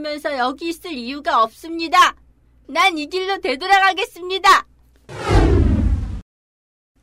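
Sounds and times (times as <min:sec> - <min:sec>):
speech: 0:00.0 - 0:05.2
whoosh of rushing wind as someone flies off: 0:05.1 - 0:06.2.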